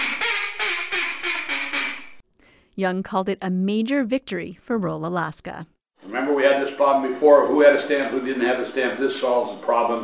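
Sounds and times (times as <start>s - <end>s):
duck call imitating duck quacks: 0.0s - 2.2s
speech: 2.8s - 10.0s.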